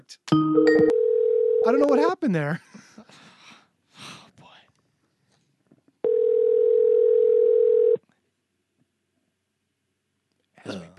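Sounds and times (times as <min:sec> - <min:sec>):
speech: 0:00.1 - 0:02.8
telephone dial tone: 0:00.9 - 0:01.7, 0:06.0 - 0:08.0.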